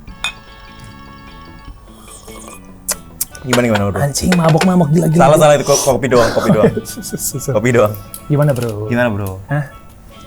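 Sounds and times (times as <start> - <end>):
glasses clinking together in a toast: 0.1 - 2.7, 3.3 - 5.7
speech: 3.4 - 9.8
laughter: 3.5 - 7.9.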